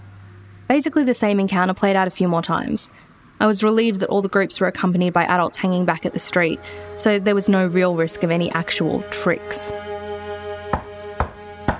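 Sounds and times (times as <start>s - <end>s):
low hum: 0.0s - 11.7s
speech: 0.7s - 9.9s
knocking on a door: 10.7s - 11.7s.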